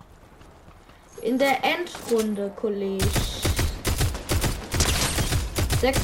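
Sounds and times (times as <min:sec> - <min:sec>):
speech: 0:01.2 - 0:03.4, 0:05.8 - 0:06.0
pump shotgun gunfire in a video game: 0:03.0 - 0:06.0.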